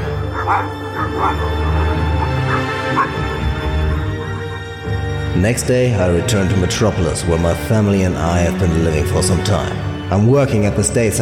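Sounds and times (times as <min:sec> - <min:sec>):
dog barking: 0:00.0 - 0:04.8
speech: 0:00.5 - 0:01.7, 0:05.4 - 0:11.1.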